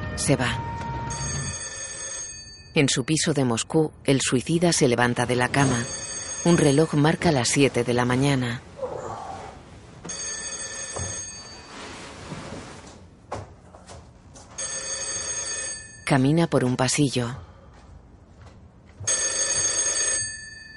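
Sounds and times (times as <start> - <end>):
speech: 0.2 - 0.7, 2.7 - 8.7, 16.1 - 17.5
telephone bell ringing in a Moscow flat: 0.7 - 3.0, 5.5 - 7.3, 10.1 - 11.8, 14.5 - 16.3, 19.1 - 20.7
soft room noises: 5.5 - 20.7.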